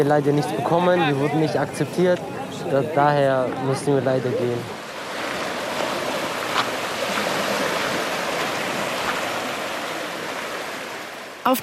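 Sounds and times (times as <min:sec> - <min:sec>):
speech: 0:00.0 - 0:04.8, 0:11.4 - 0:11.6
gentle sea water washing against a pebble shore: 0:04.9 - 0:11.3.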